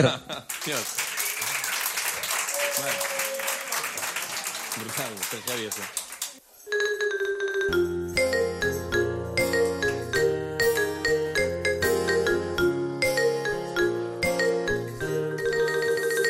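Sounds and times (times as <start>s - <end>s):
speech: 0.0s - 1.0s, 2.8s - 3.1s, 4.8s - 6.0s
seated concert audience applauding: 0.0s - 6.4s
upbeat music with a sustained melody: 7.4s - 16.2s.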